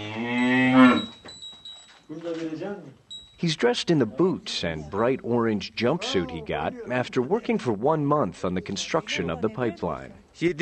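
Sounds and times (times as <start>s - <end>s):
cow mooing in the mountain village of Soutveren: 0.0s - 1.1s
speech: 2.7s - 10.6s.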